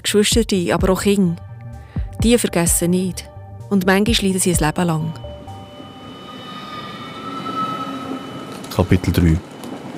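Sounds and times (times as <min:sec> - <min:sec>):
speech: 0:00.1 - 0:01.5, 0:02.2 - 0:05.3, 0:08.8 - 0:09.9
low rumble: 0:02.0 - 0:09.9
railway hum with high metallic whine at Zug railway station: 0:04.7 - 0:09.9.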